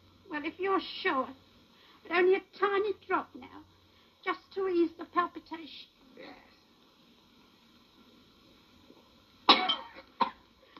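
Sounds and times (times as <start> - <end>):
speech: 0.4 - 6.5
person coughing after a drink: 9.5 - 10.4.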